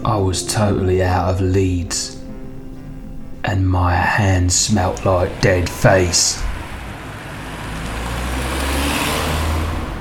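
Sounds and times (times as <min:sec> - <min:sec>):
speech: 0:00.0 - 0:02.2, 0:03.4 - 0:06.5
car engine low rumble driving along a road: 0:02.3 - 0:09.9.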